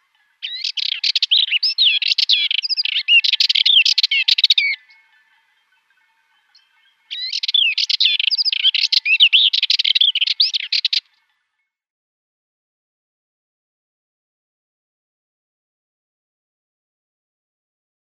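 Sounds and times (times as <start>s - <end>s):
Sardinian warbler singing: 0.4s - 5.8s, 6.4s - 11.2s.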